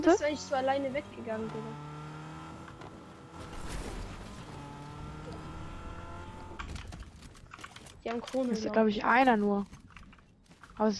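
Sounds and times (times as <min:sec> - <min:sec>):
speech: 0:00.0 - 0:01.9, 0:08.0 - 0:09.8, 0:10.8 - 0:10.9
video game motorcycle engine revving: 0:00.0 - 0:07.0.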